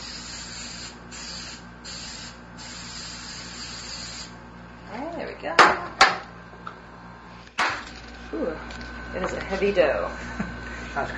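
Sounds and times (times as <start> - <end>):
canola oil cooking spray misting onto a pan: 0.0 - 4.4
speech: 5.4 - 6.0, 8.3 - 11.1.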